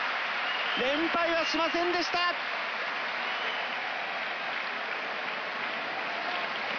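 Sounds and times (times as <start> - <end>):
large arena crowd cheering after sumo bout: 0.0 - 6.7
speech: 0.8 - 2.6.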